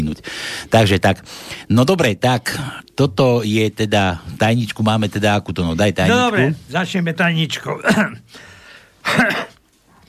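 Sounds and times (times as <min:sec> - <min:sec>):
speech: 0:00.2 - 0:09.5
short harsh cough: 0:09.0 - 0:09.6.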